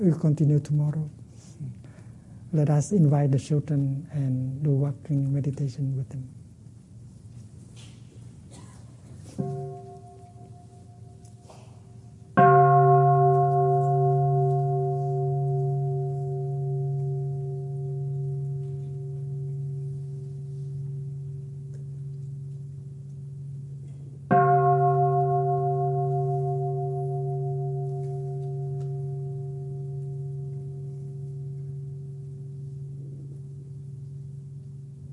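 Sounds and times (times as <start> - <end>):
speech: 0.0 - 1.8, 2.5 - 6.4, 9.4 - 9.6
small meditation bell ringing: 9.4 - 35.1.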